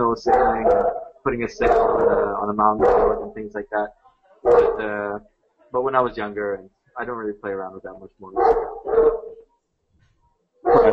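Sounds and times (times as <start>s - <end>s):
dog barking excitedly: 0.2s - 3.3s, 4.5s - 4.8s, 8.4s - 9.4s, 10.7s - 10.9s
speech: 0.2s - 9.2s.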